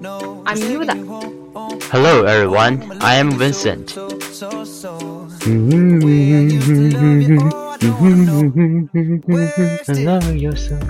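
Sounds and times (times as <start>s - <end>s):
speech: 0.0s - 10.8s
man humming a wandering melody: 1.9s - 4.0s, 5.4s - 10.1s.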